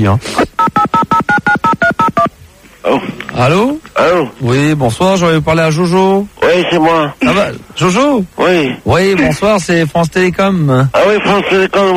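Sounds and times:
speech: 0:00.0 - 0:00.6, 0:03.4 - 0:11.9
touch-tone beeps as a telephone number is dialed: 0:00.6 - 0:02.3.

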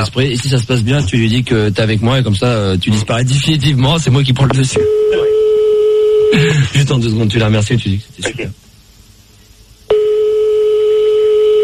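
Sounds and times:
speech: 0:00.0 - 0:05.3, 0:06.3 - 0:08.6
telephone ringing tone on a phone call: 0:04.8 - 0:06.3, 0:09.9 - 0:11.6.

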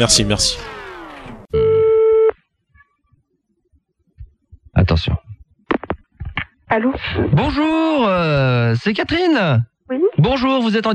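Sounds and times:
speech: 0:00.0 - 0:00.7, 0:04.8 - 0:05.2, 0:06.7 - 0:10.9
ringback tone on an outgoing phone call placed by a radio station in Avignon: 0:01.5 - 0:02.3.

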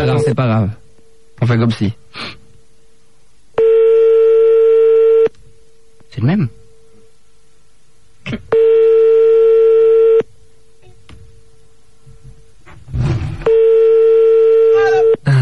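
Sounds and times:
speech: 0:00.0 - 0:00.8, 0:01.4 - 0:02.4, 0:06.2 - 0:06.6, 0:08.2 - 0:08.8
telephone ringing tones while calling back: 0:03.6 - 0:05.3, 0:08.5 - 0:10.3, 0:13.4 - 0:15.2.

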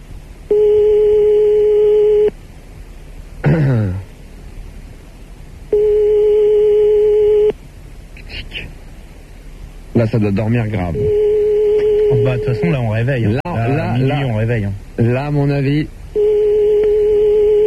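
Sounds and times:
telephone ringback tone on a call line: 0:00.5 - 0:02.3, 0:05.7 - 0:07.5, 0:11.0 - 0:12.6, 0:16.2 - 0:17.6
person clearing throat: 0:03.4 - 0:04.1
speech: 0:10.0 - 0:11.2, 0:12.1 - 0:16.0.

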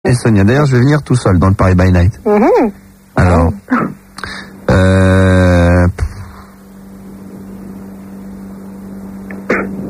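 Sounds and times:
speech: 0:00.0 - 0:06.0
hum: 0:00.1 - 0:09.8
harsh cough with strained voiced rasp: 0:03.7 - 0:04.0, 0:09.5 - 0:09.8
breathy bursts: 0:03.7 - 0:06.6.

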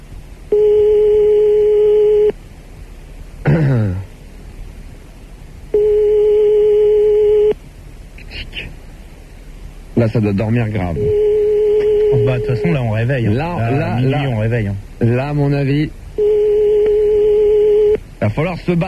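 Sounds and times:
ringback tones on an outgoing phone line: 0:00.5 - 0:02.3, 0:05.8 - 0:07.6, 0:11.0 - 0:12.8, 0:16.2 - 0:18.0
person clearing throat: 0:03.4 - 0:04.1
speech: 0:10.0 - 0:11.3, 0:12.1 - 0:16.0, 0:18.2 - 0:18.8.

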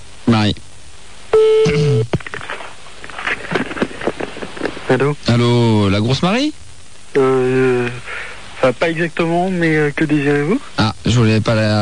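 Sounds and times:
noisy bursts: 0:00.0 - 0:11.8
speech: 0:00.4 - 0:00.7, 0:04.9 - 0:07.7, 0:08.7 - 0:11.8
telephone tone: 0:01.3 - 0:02.1.

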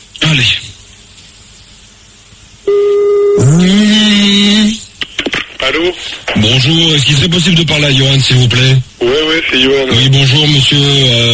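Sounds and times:
speech: 0:00.4 - 0:00.7, 0:05.7 - 0:11.3
louder buzzy telephone tone: 0:02.6 - 0:04.5.

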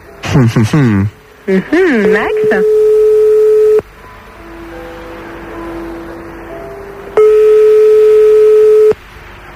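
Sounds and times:
speech: 0:00.3 - 0:02.8
telephone ringback tone on a live radio call: 0:01.8 - 0:03.8, 0:07.2 - 0:09.0.

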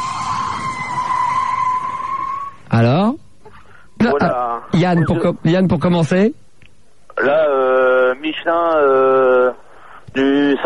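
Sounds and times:
car tyres screeching: 0:00.0 - 0:02.8
speech: 0:04.2 - 0:06.4, 0:07.2 - 0:10.6.

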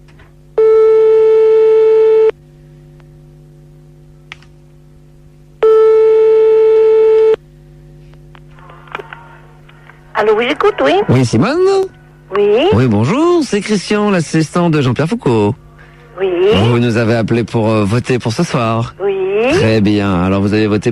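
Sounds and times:
low constant hum: 0:00.0 - 0:20.9
telephone line tone while calling a listener live: 0:00.6 - 0:02.4, 0:05.6 - 0:07.4
speech: 0:10.2 - 0:15.6, 0:16.2 - 0:20.9.

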